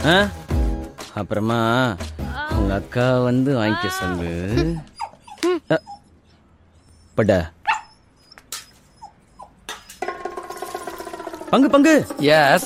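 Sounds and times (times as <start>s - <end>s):
speech: 0.0s - 0.5s, 1.2s - 4.9s, 5.6s - 5.9s, 7.2s - 7.6s, 11.5s - 12.6s
dog whimpering: 3.7s - 10.0s.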